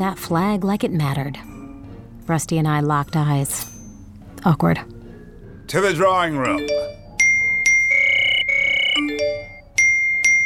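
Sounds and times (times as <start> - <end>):
speech: 0.0 - 1.5, 2.3 - 3.7, 4.4 - 4.9, 5.7 - 6.8
bright electronic phone notification chime: 6.5 - 10.4.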